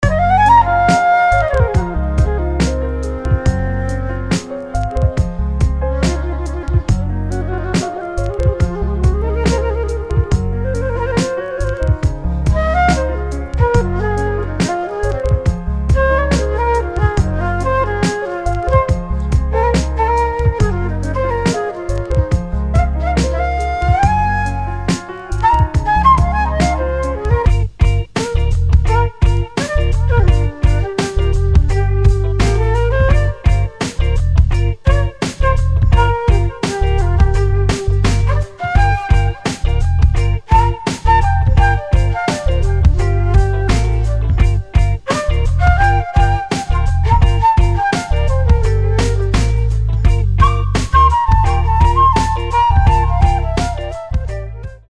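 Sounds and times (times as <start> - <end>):
evocative flutes playing: 0.0 - 54.8.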